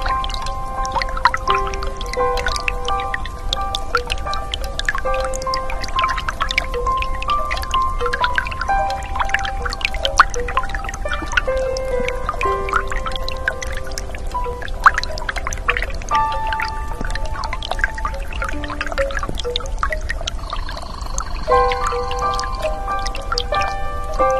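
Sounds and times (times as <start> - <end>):
small stream babbling: 0.0 - 24.3.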